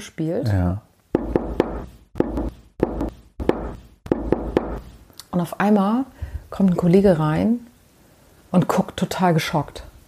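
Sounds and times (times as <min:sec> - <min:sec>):
speech: 0:00.0 - 0:00.9, 0:05.4 - 0:07.7, 0:08.5 - 0:09.9
sharp knocking at night recorded on a mobile phone: 0:01.1 - 0:05.0.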